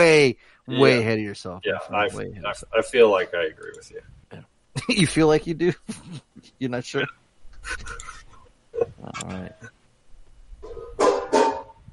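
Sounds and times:
speech: 0:00.0 - 0:08.2, 0:08.8 - 0:09.8
laughter: 0:07.6 - 0:08.9
dishes clattering while washing dishes: 0:10.7 - 0:11.8
pots clanking together while washing dishes: 0:11.0 - 0:11.8.

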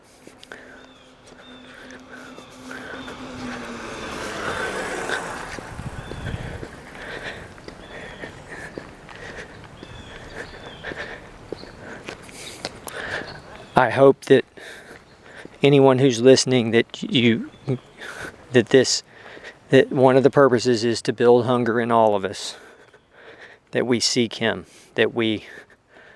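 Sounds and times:
footsteps on an outdoor walking trail in a city: 0:00.0 - 0:13.8, 0:14.4 - 0:15.6, 0:17.5 - 0:20.0
low rumble of passing cars: 0:00.0 - 0:23.1
speech: 0:13.8 - 0:14.4, 0:15.6 - 0:17.9, 0:18.5 - 0:19.1, 0:19.7 - 0:22.6, 0:23.7 - 0:25.7.

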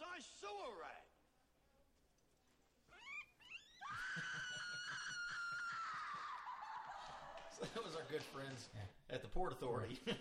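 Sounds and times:
speech: 0:00.2 - 0:01.2, 0:07.7 - 0:10.1
kitten screeching: 0:02.9 - 0:05.8
laughter: 0:04.0 - 0:08.9, 0:09.9 - 0:10.1.

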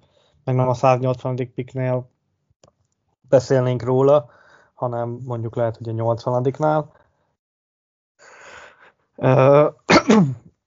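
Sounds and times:
speech: 0:00.5 - 0:02.1, 0:03.3 - 0:07.0, 0:09.2 - 0:10.4
person sneezing: 0:09.9 - 0:10.5.

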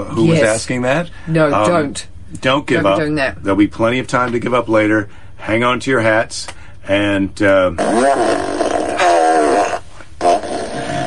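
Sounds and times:
speech: 0:00.0 - 0:08.7
fart machine sound effect blasts: 0:07.7 - 0:11.0.

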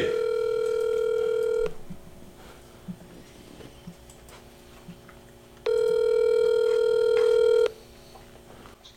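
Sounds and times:
buzzy phone ringback tone as a call is placed: 0:00.0 - 0:01.7, 0:05.7 - 0:07.7.

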